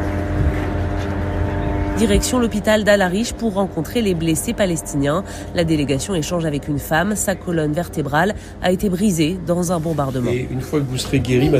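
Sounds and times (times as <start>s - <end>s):
military drones buzzing overhead: 0.0s - 11.5s
speech: 2.0s - 11.5s.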